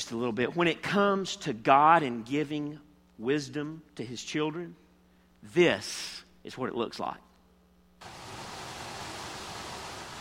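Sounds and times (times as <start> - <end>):
speech: 0.1 - 4.8, 5.4 - 7.3
water gushing from a burst fire hydrant: 8.0 - 10.1.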